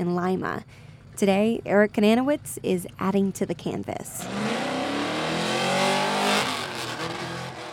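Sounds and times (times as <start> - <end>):
speech: 0.0 - 4.6
car engine revving while doing donuts: 4.2 - 7.7
tire squeal: 4.2 - 7.7.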